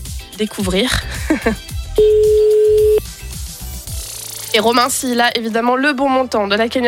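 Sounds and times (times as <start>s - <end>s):
speech: 0.4s - 2.2s, 4.5s - 6.8s
outgoing telephone ringing tone heard from the caller's end: 2.0s - 3.0s.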